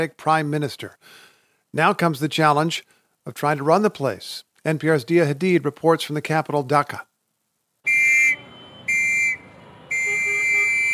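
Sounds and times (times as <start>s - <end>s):
speech: 0.0s - 7.1s
loud rumble of street traffic at an intersection in Dhaka: 7.9s - 10.9s
whistle blasts blown by a Boy Scout to halt traffic in Dhaka: 7.9s - 10.9s.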